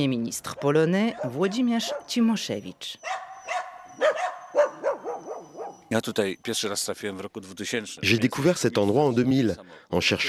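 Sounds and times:
speech: 0.0 - 3.2, 5.9 - 10.2
dogs barking and yelping in the courtyard of a former forester's house in a forest: 0.5 - 6.0.

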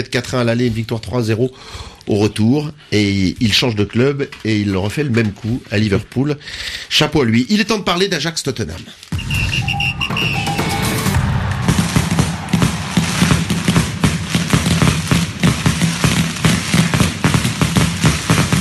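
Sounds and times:
speech: 0.0 - 10.3
fireworks whistling at night outside a team hotel: 9.1 - 18.6.

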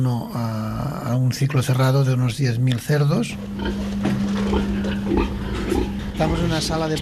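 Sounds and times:
steady hum from a farrowing room ventilation system: 0.0 - 6.9
sows grunting and squealing in a pig farrowing room in Alcarràz: 3.4 - 6.9.

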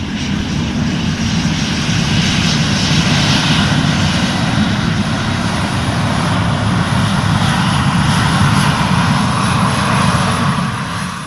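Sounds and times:
aircraft engines roaring as planes move on airport runways: 0.0 - 11.2.

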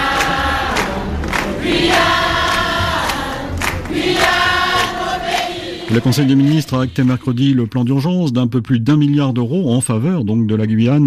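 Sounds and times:
protest crowd roaring in front of gates: 0.0 - 6.9
rhythmic banging or clapping: 0.0 - 7.8
speech: 5.9 - 11.0.

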